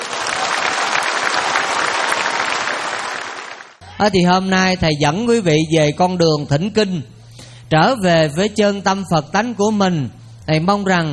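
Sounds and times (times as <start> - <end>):
audience applause at a Buddhist dharma talk: 0.0 - 3.8
speech: 4.0 - 11.1.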